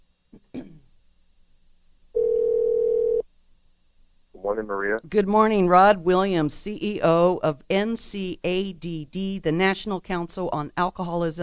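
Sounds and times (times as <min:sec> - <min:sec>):
steady electronic telephone ringback tone: 0:02.2 - 0:03.2
speech: 0:04.6 - 0:11.4.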